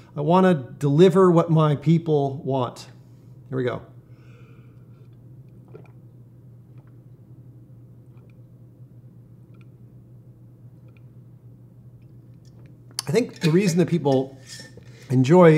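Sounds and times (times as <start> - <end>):
low constant hum: 0.0 - 15.5
speech: 0.2 - 3.9, 13.1 - 15.5
person gulping water: 5.5 - 7.0.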